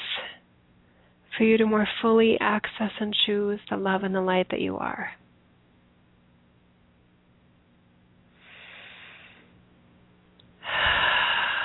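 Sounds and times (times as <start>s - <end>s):
speech: 1.4s - 5.2s
deep breath during a guided relaxation: 8.3s - 9.6s, 10.6s - 11.6s.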